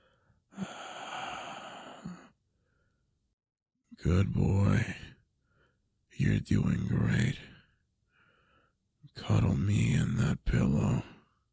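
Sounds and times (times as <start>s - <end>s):
person breathing in and out: 0.0s - 3.1s, 8.1s - 8.8s
speech: 4.0s - 5.0s, 6.2s - 7.5s, 9.2s - 11.1s.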